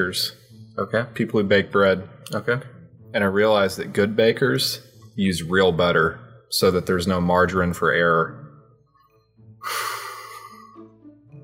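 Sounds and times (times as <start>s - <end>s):
speech: 0.0s - 8.4s
heavy drawn-out exhale: 9.6s - 10.7s.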